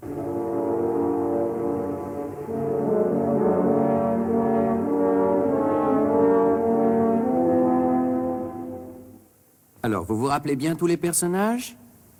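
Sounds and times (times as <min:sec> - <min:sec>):
three French horns playing a dark heavy melody in harmony: 0:00.0 - 0:09.3
speech: 0:09.9 - 0:11.8.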